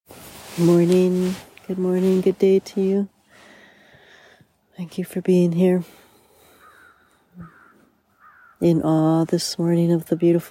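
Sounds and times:
speech: 0:00.6 - 0:03.1, 0:04.8 - 0:06.0, 0:07.4 - 0:07.6, 0:08.6 - 0:10.4
crow cawing: 0:06.5 - 0:08.6.

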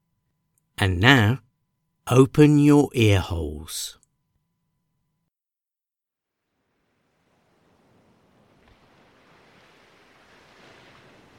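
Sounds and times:
speech: 0:00.8 - 0:01.4, 0:02.1 - 0:04.0
sea waves washing onto a beach: 0:06.9 - 0:11.3.

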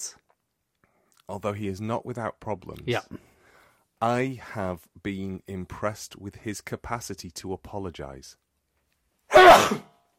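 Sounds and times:
speech: 0:01.3 - 0:03.3, 0:04.0 - 0:08.4, 0:09.5 - 0:09.9
forceful human sneeze: 0:09.3 - 0:09.9.

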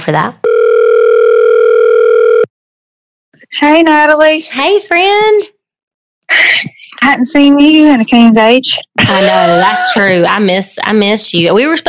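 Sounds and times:
speech: 0:00.0 - 0:00.5, 0:03.6 - 0:05.5, 0:07.1 - 0:11.8
ringback tone of an outgoing telephone call: 0:00.4 - 0:02.5.

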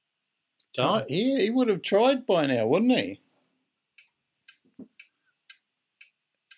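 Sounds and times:
speech: 0:00.8 - 0:03.2
clock ticking: 0:03.9 - 0:06.5.

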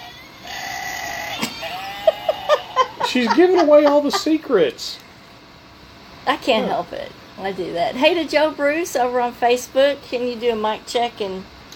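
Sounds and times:
novelty goat screamer toy playing a goat bleat: 0:00.4 - 0:01.4
laughter: 0:01.2 - 0:04.6
speech: 0:03.1 - 0:05.0, 0:06.3 - 0:11.5.

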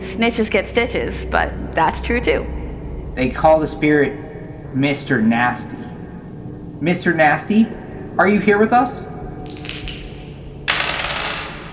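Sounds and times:
speech: 0:00.2 - 0:02.6, 0:03.2 - 0:05.8, 0:06.8 - 0:09.1
dice rolled and dropped onto a surface: 0:09.5 - 0:10.1, 0:10.7 - 0:11.7.

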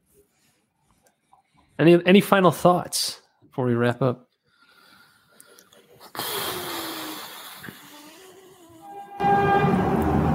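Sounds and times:
speech: 0:01.8 - 0:04.3
car horn honking: 0:08.9 - 0:10.3
rumbling traffic noise: 0:09.2 - 0:10.3.

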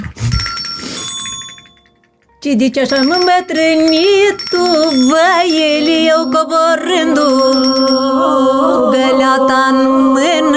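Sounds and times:
two small hand bells jingling: 0:00.3 - 0:02.0, 0:02.8 - 0:08.3
speech: 0:02.4 - 0:10.5.

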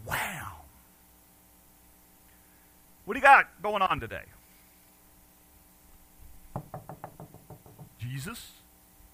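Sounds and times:
quiet room hum: 0:00.0 - 0:09.1
speech: 0:03.1 - 0:04.4, 0:08.1 - 0:08.6
knocking on a door: 0:06.5 - 0:08.0.

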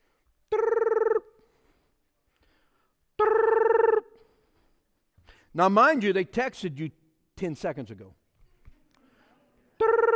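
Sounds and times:
phone ringing tone on an outgoing call: 0:00.6 - 0:01.3, 0:03.2 - 0:04.1, 0:09.8 - 0:10.1
speech: 0:05.6 - 0:08.2.

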